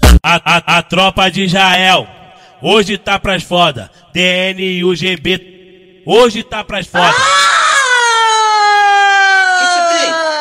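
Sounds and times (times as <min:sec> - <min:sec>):
speech: 0:00.4 - 0:07.4
ambulance siren wailing: 0:07.0 - 0:10.3.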